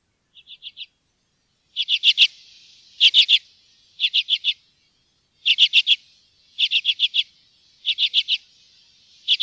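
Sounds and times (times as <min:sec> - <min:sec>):
common redpoll chattering chet notes: 0:01.7 - 0:04.7, 0:05.4 - 0:09.4.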